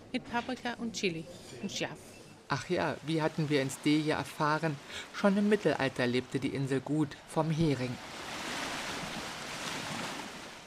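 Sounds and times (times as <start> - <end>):
fresh sea breeze on an island shore: 0.0 - 10.6
speech: 0.1 - 8.2
waves at the shore of an island: 2.6 - 10.6.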